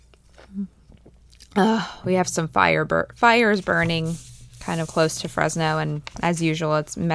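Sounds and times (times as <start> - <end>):
sip of water: 0.0 - 6.9
speech: 1.6 - 7.1.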